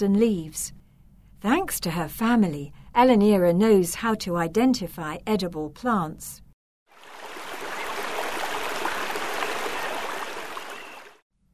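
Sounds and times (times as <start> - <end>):
speech: 0.0 - 0.8, 1.4 - 6.4
river flowing with light bubbling: 6.9 - 11.2.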